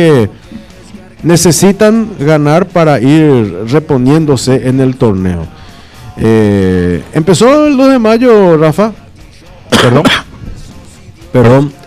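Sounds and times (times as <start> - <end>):
speech: 0.0 - 0.4, 1.2 - 5.6, 6.2 - 9.0, 9.7 - 10.2, 11.3 - 11.8
person coughing: 9.7 - 10.4.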